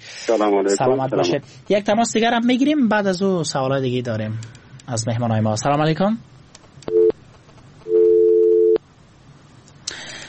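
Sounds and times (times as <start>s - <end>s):
speech: 0.3s - 6.4s
telephone busy signal after a call is cut off: 6.9s - 7.2s, 7.9s - 8.8s.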